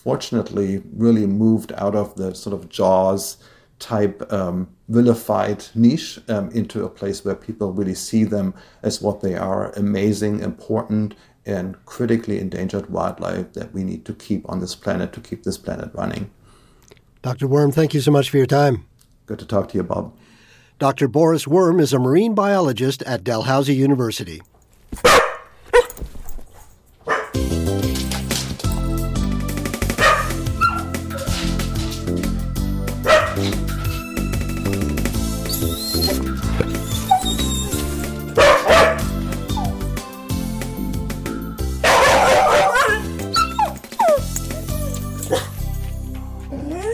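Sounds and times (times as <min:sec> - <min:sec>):
speech: 0:00.0 - 0:16.4, 0:17.2 - 0:20.2, 0:20.8 - 0:25.2
dog barking: 0:25.0 - 0:26.0, 0:27.0 - 0:27.4, 0:30.0 - 0:31.5, 0:33.0 - 0:33.5, 0:38.4 - 0:39.7, 0:41.8 - 0:44.2
music: 0:27.3 - 0:46.9
dog whimpering: 0:30.1 - 0:31.6, 0:35.4 - 0:39.8, 0:42.6 - 0:45.6, 0:46.5 - 0:46.9.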